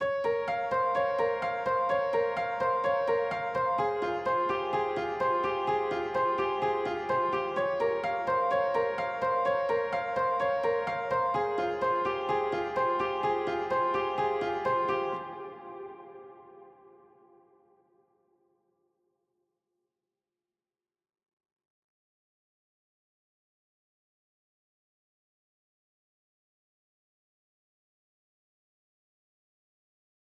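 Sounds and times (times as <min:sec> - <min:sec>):
trap piano melody loop in F minor: 0:00.0 - 0:16.4.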